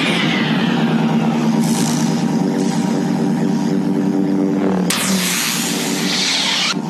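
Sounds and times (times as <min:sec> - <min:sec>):
broken ceiling fan's oscillating motor humming: 0:00.0 - 0:06.8.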